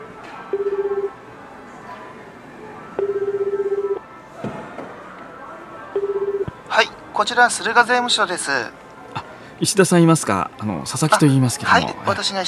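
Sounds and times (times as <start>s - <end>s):
electronic telephone beeps on a toll-free call: 0.5s - 1.2s, 3.0s - 4.0s, 6.0s - 6.5s
speech: 6.8s - 8.8s, 9.6s - 12.4s.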